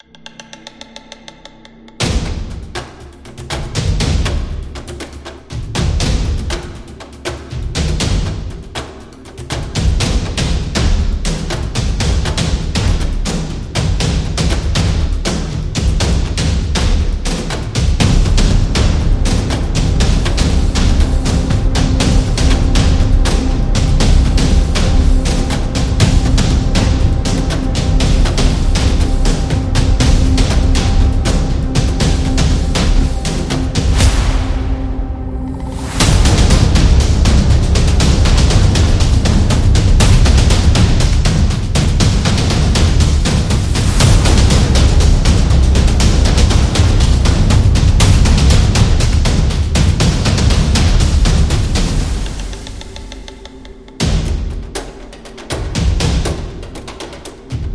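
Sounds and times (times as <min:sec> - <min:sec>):
epic action tribal drums: 0:00.0 - 0:57.7.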